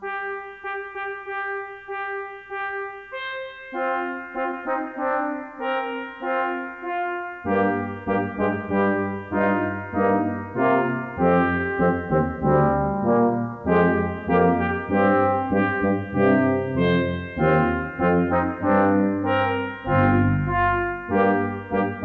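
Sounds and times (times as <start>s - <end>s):
FM synth brass canon: 0.0s - 22.0s.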